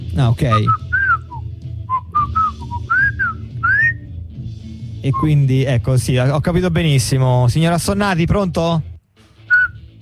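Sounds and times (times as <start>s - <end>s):
speech: 0.2s - 0.8s, 5.0s - 8.9s
person whistling a song melody: 0.5s - 4.0s, 9.5s - 9.8s.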